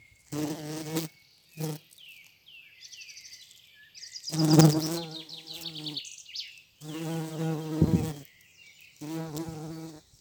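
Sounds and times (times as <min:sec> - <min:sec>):
yellow bumblebee: 0:00.2 - 0:02.1, 0:04.2 - 0:06.1, 0:06.8 - 0:08.3, 0:08.9 - 0:10.1.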